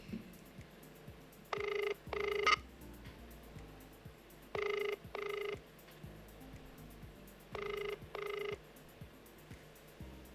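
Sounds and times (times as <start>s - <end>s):
faint noise: 0.0s - 10.3s
telephone ringback tone on a call line: 1.5s - 2.6s, 4.6s - 5.6s, 7.6s - 8.6s.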